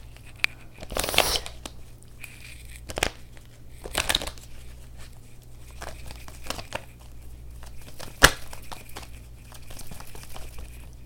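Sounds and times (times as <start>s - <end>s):
cards being handled and drawn from a deck during a card reading: 0.0s - 11.0s
low steady hum: 0.0s - 11.0s.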